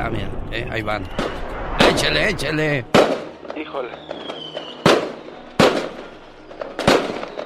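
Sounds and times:
speech: 0.0 - 3.0, 3.7 - 4.4
fireworks rockets exploding: 1.1 - 2.1, 2.9 - 7.4
faint whistle: 3.8 - 5.5, 7.1 - 7.4.

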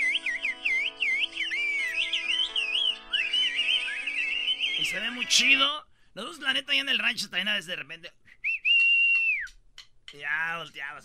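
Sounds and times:
woman whistling in a whistled language: 0.0 - 5.0, 8.4 - 9.5
speech: 4.9 - 8.2, 10.1 - 11.0.

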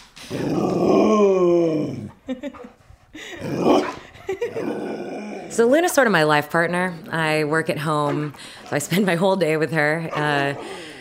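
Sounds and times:
large Border Collie Great Pyrenees mix dog grumbling: 0.3 - 2.2, 3.4 - 5.8
speech: 2.3 - 3.7, 4.3 - 10.8.

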